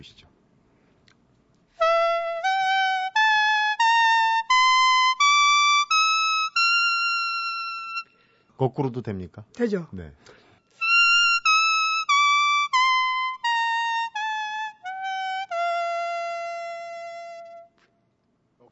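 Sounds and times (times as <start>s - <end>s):
speech: 0.0s - 0.3s, 8.6s - 10.4s
leaf whistle made from a spathiphyllum houseplant leaf playing a scale: 1.8s - 8.2s, 10.8s - 17.8s.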